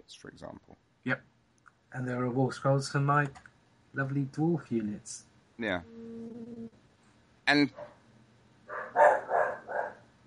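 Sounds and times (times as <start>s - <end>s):
speech: 0.1s - 6.0s, 7.5s - 7.9s
dog barking: 7.7s - 8.0s, 8.7s - 10.0s.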